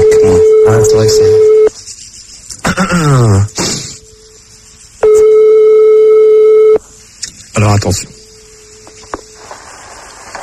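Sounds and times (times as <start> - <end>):
telephone ringing tone on a radio call-in line: 0.0 - 1.7, 5.0 - 6.8
faint hum: 0.0 - 10.4
speech: 1.0 - 1.5, 7.8 - 8.2.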